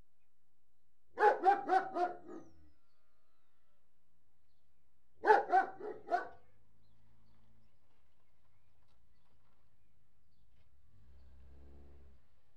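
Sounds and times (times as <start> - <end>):
German Shepherd barking indoors: 1.2 - 2.6, 5.2 - 6.5.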